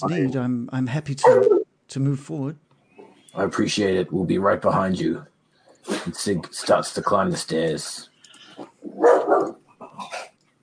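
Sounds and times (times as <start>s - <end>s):
speech: 0.0s - 2.6s, 3.3s - 9.2s
dog barking in the distance: 1.2s - 1.6s, 8.9s - 9.6s.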